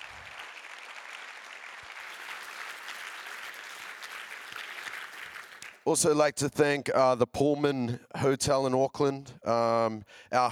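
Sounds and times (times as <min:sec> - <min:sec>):
audience applause: 0:00.0 - 0:05.8
speech: 0:05.8 - 0:10.4.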